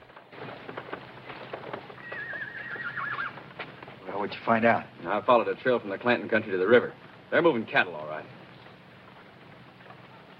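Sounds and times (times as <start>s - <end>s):
soft horse hoofbeats: 0.0s - 10.3s
horse whinnying: 2.0s - 3.5s
speech: 4.2s - 8.1s.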